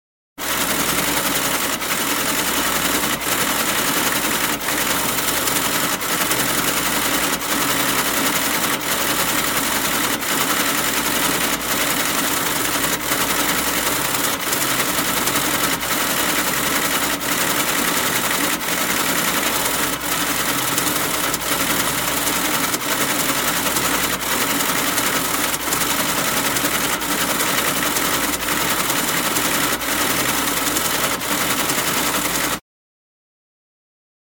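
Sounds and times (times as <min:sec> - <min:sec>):
printer machine running: 0:00.4 - 0:32.6.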